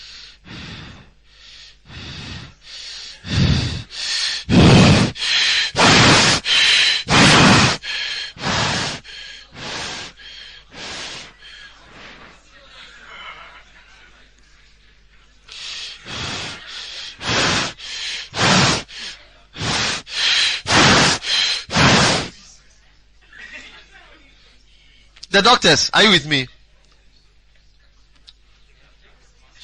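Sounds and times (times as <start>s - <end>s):
person imitating Cheyne-Stokes breathing with rapid gasping breaths: 0.0s - 12.4s, 15.5s - 22.4s
laughter: 11.6s - 15.0s, 23.2s - 24.3s
speech: 25.4s - 26.5s.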